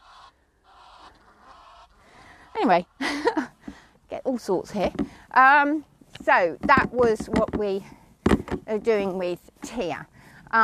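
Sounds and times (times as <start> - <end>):
Egyptian geese honking while flying overhead: 0.0 - 3.0
speech: 2.6 - 3.5, 4.3 - 8.0, 8.6 - 10.6.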